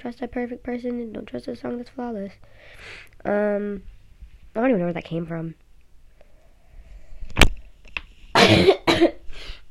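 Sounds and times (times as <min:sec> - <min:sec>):
speech: 0:00.0 - 0:03.9, 0:04.5 - 0:05.6, 0:08.5 - 0:09.2
soft breath: 0:02.4 - 0:03.1, 0:06.1 - 0:07.4
person coughing with heavy rasping coughs: 0:08.4 - 0:09.3.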